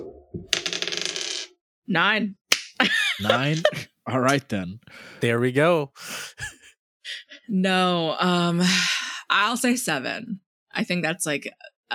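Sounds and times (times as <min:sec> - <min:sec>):
ten-sided die clattering across a hard surface: 0:00.5 - 0:01.5
speech: 0:01.9 - 0:11.7
laughter: 0:02.8 - 0:04.5, 0:06.1 - 0:06.7
person exclaiming: 0:03.2 - 0:03.8.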